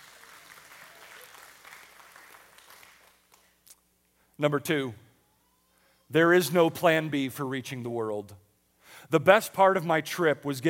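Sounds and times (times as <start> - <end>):
audience applause: 0.0 - 3.4
speech: 4.4 - 5.0, 6.1 - 8.4, 9.0 - 10.6.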